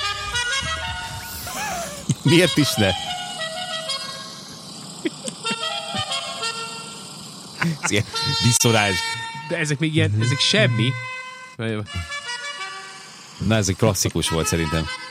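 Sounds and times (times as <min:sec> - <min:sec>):
musical car horn from a video game playing a tune: 0:00.0 - 0:01.5, 0:02.3 - 0:04.5, 0:05.5 - 0:07.1, 0:07.9 - 0:13.1, 0:14.2 - 0:15.0
laughter: 0:00.4 - 0:02.9, 0:05.0 - 0:06.3, 0:07.6 - 0:10.4
speech: 0:02.2 - 0:03.1, 0:07.9 - 0:12.1, 0:13.4 - 0:15.0.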